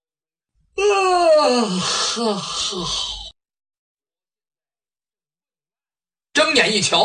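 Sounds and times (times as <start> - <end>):
man imitating a yawn while stretching: 0.8 - 3.4
speech: 1.4 - 3.2, 6.6 - 7.0.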